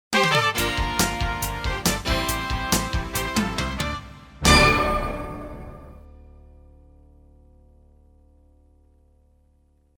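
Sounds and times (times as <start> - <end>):
lively horns: 0.1 - 6.0.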